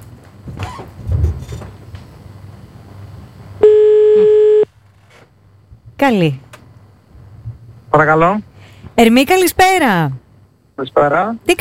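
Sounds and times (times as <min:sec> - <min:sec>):
low rumble: 0:00.4 - 0:11.6
telephone ringback tone while placing a call: 0:03.6 - 0:04.7
speech: 0:06.0 - 0:06.4, 0:08.0 - 0:10.2, 0:10.8 - 0:11.6.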